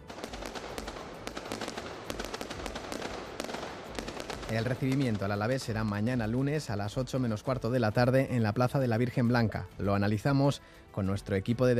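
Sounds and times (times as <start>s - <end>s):
fireworks exploding during celebration: 0.0s - 6.6s
speech: 4.5s - 11.7s.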